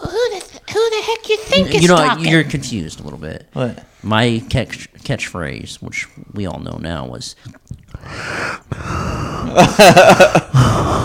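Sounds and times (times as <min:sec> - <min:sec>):
strained voiced sound: 0:00.0 - 0:02.8
speech: 0:01.5 - 0:11.0
person gasping for breath: 0:08.0 - 0:09.6, 0:10.5 - 0:11.0
laughter: 0:09.4 - 0:10.6.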